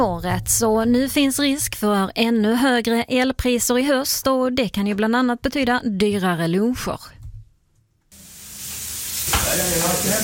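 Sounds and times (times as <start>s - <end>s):
speech: 0.0s - 7.2s
food sizzling in a hot pan in a restaurant kitchen: 8.2s - 10.2s.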